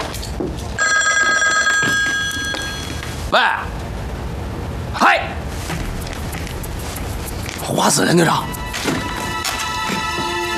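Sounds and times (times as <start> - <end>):
faint noise: 0.0 - 10.5
electric telephone bell ringing: 0.8 - 3.0
speech: 3.3 - 3.7, 7.8 - 9.0.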